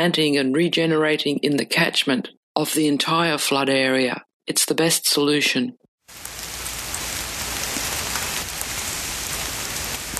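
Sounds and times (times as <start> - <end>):
speech: 0.0 - 6.3
steady rain drumming on a hard surface heard from inside a car: 6.0 - 10.1.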